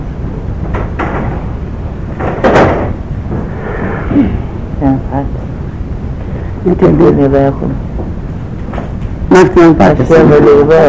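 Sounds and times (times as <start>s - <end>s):
door swinging shut: 2.2s - 3.0s
speech: 4.2s - 5.5s, 6.6s - 8.2s, 9.3s - 10.8s.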